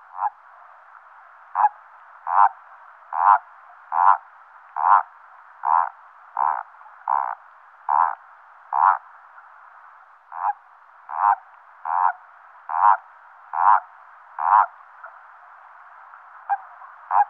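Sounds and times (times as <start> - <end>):
common toad giving rhythmic grating croaks in wetland habitat: 0.0 - 0.4, 1.5 - 9.1, 10.3 - 15.2, 16.4 - 17.2
soft continuous hiss: 0.0 - 17.2.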